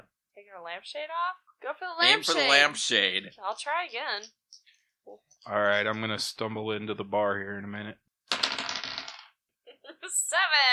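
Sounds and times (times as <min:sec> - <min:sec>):
speech: 0:00.5 - 0:04.4, 0:05.0 - 0:08.0, 0:10.0 - 0:10.7
dice tumbling across a hard table: 0:08.3 - 0:09.4.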